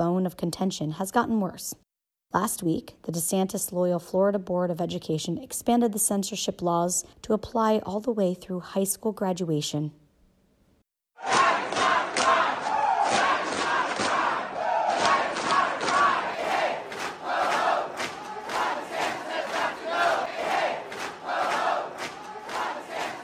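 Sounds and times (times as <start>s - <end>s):
speech: 0.0s - 10.0s
crowd of about 300 drag queens and supporters protesting at the Florida Statehouse: 11.2s - 23.2s.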